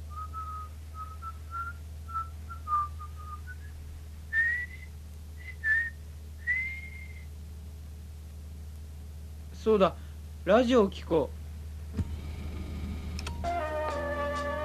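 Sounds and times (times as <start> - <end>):
steady low hum: 0.0 - 14.6
person whistling a simple melody: 0.1 - 3.7, 4.3 - 7.3
speech: 9.6 - 11.4.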